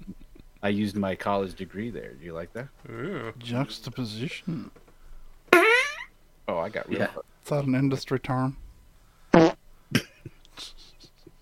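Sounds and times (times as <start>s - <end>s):
speech: 0.6s - 4.8s, 6.5s - 8.6s, 9.3s - 10.7s
loud buzzy fart: 5.5s - 6.1s, 9.3s - 9.6s.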